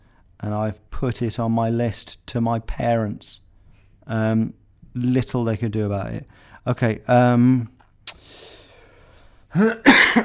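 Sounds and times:
speech: 0.4s - 3.4s, 4.0s - 7.8s, 9.5s - 10.2s
faint breathing: 6.3s - 6.7s, 8.1s - 9.5s
person coughing harshly: 9.6s - 10.2s.

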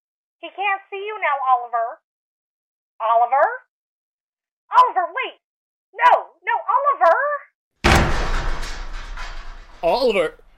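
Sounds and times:
speech: 0.4s - 2.0s, 3.0s - 3.6s, 4.7s - 7.4s, 9.8s - 10.4s
door forced open with a crash: 7.8s - 10.5s.

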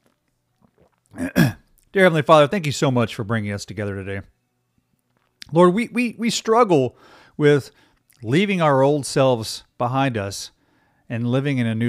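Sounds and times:
sipping and slurping coffee: 0.0s - 1.9s
speech: 2.0s - 4.4s, 5.5s - 11.8s.

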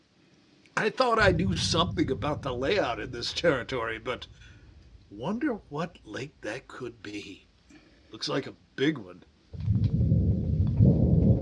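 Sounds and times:
speech: 0.8s - 4.5s, 5.1s - 7.5s, 8.1s - 9.7s
rolling thunder from an approaching storm near a cabin by a lake: 1.2s - 7.4s, 9.6s - 11.4s.

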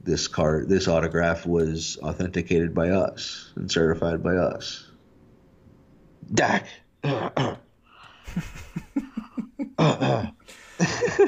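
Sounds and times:
speech: 0.0s - 4.9s, 6.2s - 7.6s, 8.3s - 8.8s, 9.8s - 11.2s
person coughing: 7.0s - 7.7s, 9.2s - 11.2s
laughter: 8.3s - 11.2s.

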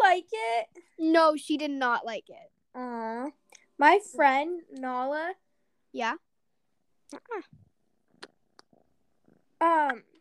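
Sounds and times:
speech: 1.0s - 6.3s, 7.1s - 7.6s, 9.6s - 10.1s
cat purring: 7.6s - 9.6s.

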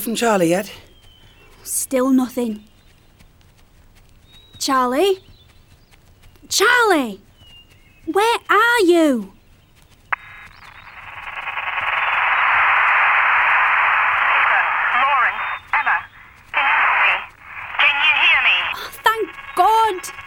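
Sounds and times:
speech: 0.0s - 0.9s, 1.6s - 2.7s, 4.6s - 5.3s, 6.5s - 7.3s, 8.1s - 9.4s
voice over crackling static on radio or phone line: 10.2s - 20.2s
warbling tones: 10.2s - 20.2s.

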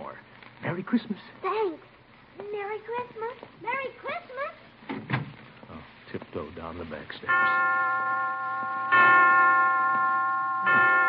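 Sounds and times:
speech: 0.8s - 4.6s, 6.1s - 8.2s
hospital chimes striking: 7.3s - 11.0s.

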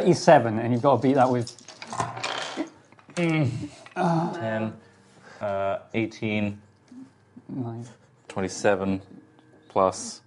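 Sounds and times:
speech: 0.0s - 1.7s, 3.2s - 4.8s, 5.4s - 6.6s, 7.5s - 10.2s
dice tumbling across a hard tabletop: 1.3s - 2.7s.

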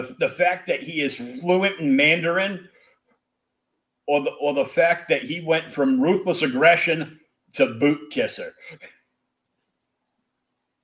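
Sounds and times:
speech: 0.0s - 2.8s, 4.1s - 9.0s
typing on a computer keyboard: 9.4s - 9.9s.

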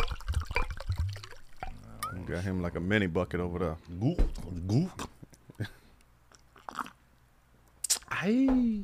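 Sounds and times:
liquid pouring into a cup: 0.0s - 1.8s
speech: 2.3s - 5.8s, 8.2s - 8.8s.

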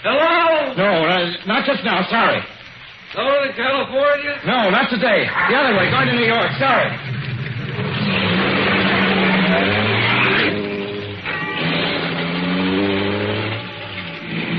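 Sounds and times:
speech: 0.9s - 7.2s
road rumble: 5.3s - 14.5s
car pulling back onto road, engine accelerating: 5.8s - 14.5s.

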